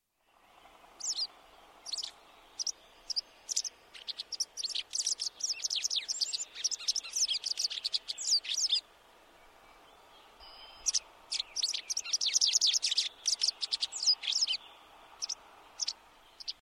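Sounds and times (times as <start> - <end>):
White Wagtail song call: 0.2 - 16.5.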